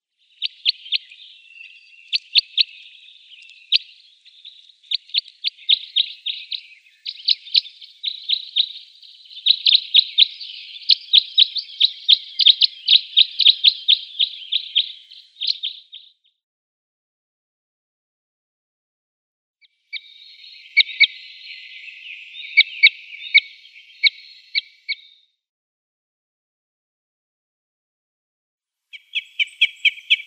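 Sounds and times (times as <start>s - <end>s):
Common Crossbill calls: 0.0s - 16.2s, 19.9s - 25.2s, 28.9s - 30.2s.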